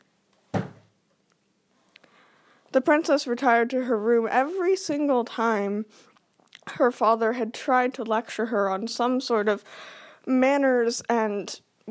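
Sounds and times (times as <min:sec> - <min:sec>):
heavy room door slamming shut: 0:00.5 - 0:00.9
speech: 0:02.8 - 0:06.1, 0:06.7 - 0:11.8.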